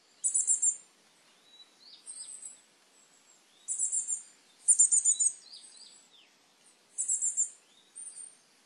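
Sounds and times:
softer fainter high coal tit calls: 0.1 - 8.5
Coal tit song on Sado Island: 0.2 - 0.9, 3.6 - 6.1, 6.9 - 8.4.

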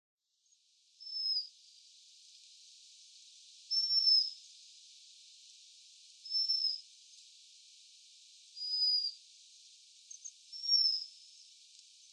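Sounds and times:
faint hiss: 0.3 - 12.1
Japanese waxwing calls in Tottori Japan: 1.0 - 1.5, 3.7 - 4.4, 6.3 - 6.8, 8.6 - 9.2, 10.1 - 11.2.

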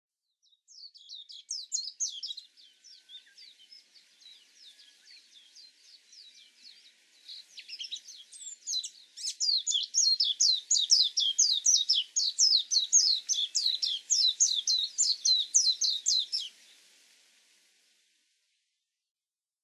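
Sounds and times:
warbling white-eye calling on Hahajima: 7.3 - 16.7.

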